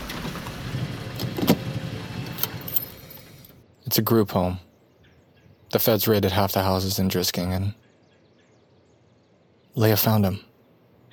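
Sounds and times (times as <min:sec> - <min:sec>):
car engine idling while being parked: 0:00.0 - 0:03.6
keys jingling: 0:02.6 - 0:03.5
speech: 0:03.9 - 0:04.7, 0:05.7 - 0:07.8, 0:09.8 - 0:10.5.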